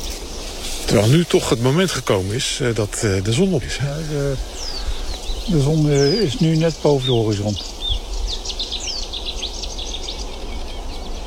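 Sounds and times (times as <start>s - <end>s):
steady low outdoor rumble: 0.0s - 8.2s
several birds singing and chirping at sunrise: 0.0s - 11.2s
speech: 1.0s - 4.7s, 5.5s - 7.8s.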